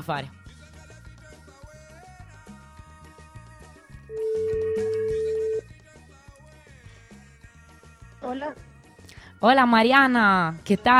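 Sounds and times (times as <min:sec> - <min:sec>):
speech: 0:00.0 - 0:00.4, 0:08.2 - 0:08.7, 0:09.4 - 0:10.9
quieter music on a live radio show: 0:00.0 - 0:10.9
phone ringback tone during a call to an interview guest: 0:04.1 - 0:05.6.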